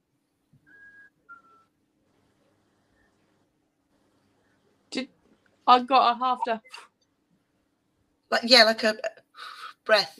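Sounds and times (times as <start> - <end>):
faint hum: 0.0 - 10.1
person whistling short notes: 0.6 - 1.7
speech: 5.7 - 6.9, 8.3 - 10.1.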